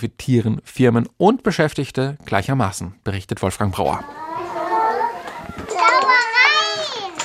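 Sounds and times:
speech: 0.0 - 4.3
young children chattering and calling out while playing indoors in a daycare: 3.9 - 7.2.

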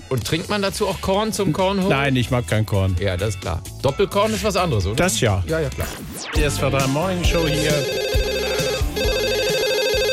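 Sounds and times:
speech: 0.1 - 8.2
telephone ringing with an incoming call: 7.4 - 10.1.

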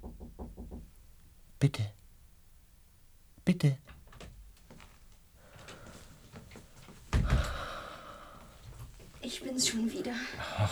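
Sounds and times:
knocking on a door: 0.0 - 0.9
speech: 1.6 - 2.0, 3.5 - 4.0, 9.3 - 10.7.

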